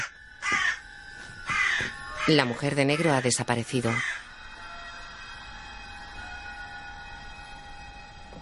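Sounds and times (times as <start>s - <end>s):
crow cawing: 0.0s - 4.3s
speech: 2.3s - 4.2s.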